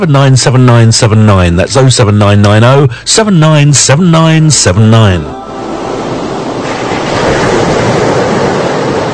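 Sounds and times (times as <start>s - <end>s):
speech: 0.0s - 5.9s
ocean surf roaring: 5.2s - 9.1s
gusty wind buffeting the microphone: 6.4s - 9.1s.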